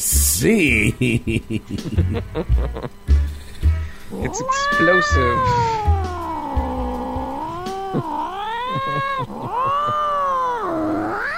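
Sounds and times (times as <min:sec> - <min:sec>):
speech: 0:00.0 - 0:03.1, 0:04.1 - 0:06.0, 0:07.9 - 0:10.0
laughter: 0:00.6 - 0:03.0, 0:07.9 - 0:10.2
cat yowling loudly with long wavering meows: 0:04.1 - 0:11.3.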